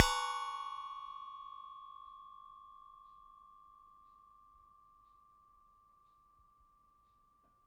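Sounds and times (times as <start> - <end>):
metal teapot stand struck: 0.0 - 1.4.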